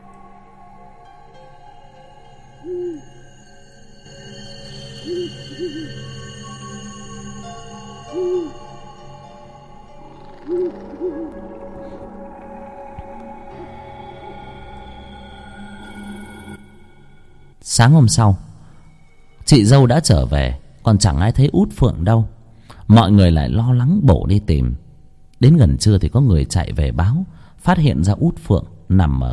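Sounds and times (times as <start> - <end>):
owl hooting from a tree branch: 0.0 - 17.2
steady sustained tonal background: 0.0 - 29.3
speech: 17.8 - 18.4, 19.5 - 24.8, 25.4 - 29.3.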